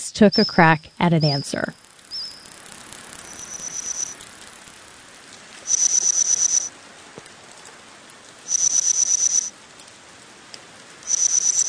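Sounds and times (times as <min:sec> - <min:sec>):
speech: 0:00.0 - 0:01.8
reconstructed chirps of Middle Jurassic insects: 0:00.3 - 0:04.9, 0:05.6 - 0:06.7, 0:08.5 - 0:09.5, 0:11.0 - 0:11.6
steady hiss: 0:01.5 - 0:11.6.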